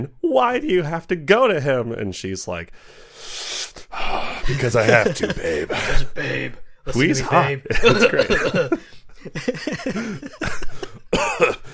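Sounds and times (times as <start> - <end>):
speech: 0.0 - 11.6
laughter: 4.5 - 6.4, 7.2 - 11.7
harsh rough coughs: 7.9 - 8.9, 9.9 - 11.7.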